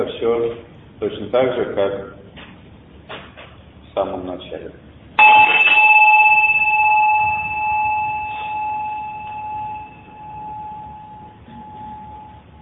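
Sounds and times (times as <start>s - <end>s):
speech: 0.2s - 2.2s, 4.0s - 5.7s
small bell being struck: 5.2s - 12.6s.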